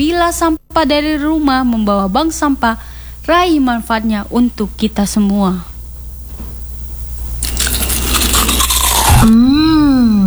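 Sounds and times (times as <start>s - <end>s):
speech: 0.0s - 5.7s, 9.2s - 9.5s
crunching crispy kerupuk gombal tapioca crackers from Madiun: 7.3s - 9.4s
drawn-out voiced hum of approval: 8.9s - 10.2s.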